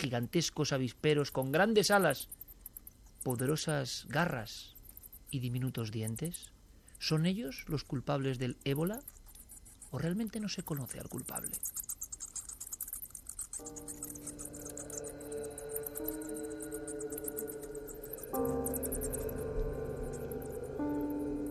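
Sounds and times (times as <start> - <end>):
speech: 0.0 - 2.4, 3.2 - 9.2, 9.9 - 11.9
bats squeaking and chittering in a cave: 0.9 - 21.5
low sustained droning tone: 13.7 - 21.5.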